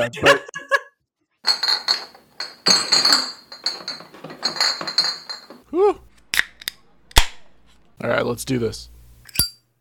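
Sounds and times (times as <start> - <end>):
speech: 0.0 - 0.6, 8.0 - 8.9
rustling handling noise: 1.5 - 5.6
aluminum drink cans clinking together: 1.5 - 5.7.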